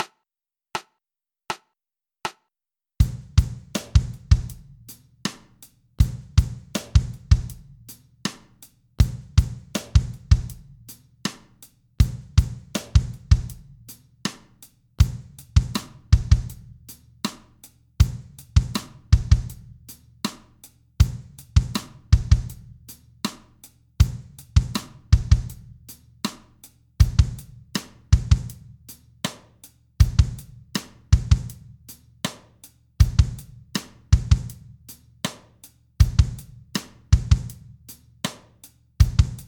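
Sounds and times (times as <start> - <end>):
drum rhythm at 80 bpm: 3.0 - 5.4, 6.0 - 7.7, 9.0 - 10.7, 15.0 - 16.7, 18.0 - 19.7, 21.0 - 22.7, 24.0 - 25.7, 27.0 - 28.6, 30.0 - 31.6, 33.0 - 34.6, 36.0 - 37.6, 39.0 - 39.4.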